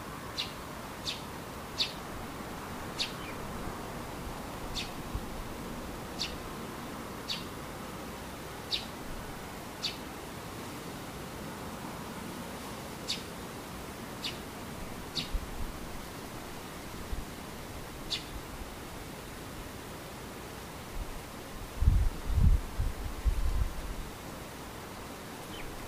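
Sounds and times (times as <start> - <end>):
soft steady rustling hiss: 0.0 - 25.8
bird calling in short sharp high chirps: 0.4 - 2.0, 3.0 - 3.4, 4.7 - 5.0, 6.2 - 6.4, 7.2 - 7.5, 8.7 - 8.9, 9.8 - 10.0, 13.0 - 13.3, 14.2 - 14.4, 15.1 - 15.4, 18.1 - 18.4.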